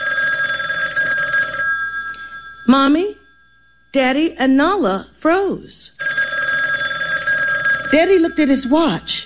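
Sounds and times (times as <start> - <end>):
telephone bell ringing in a dining room: 0.0 - 4.0, 6.0 - 9.2
speech: 2.7 - 3.2, 3.9 - 6.0, 7.9 - 9.2.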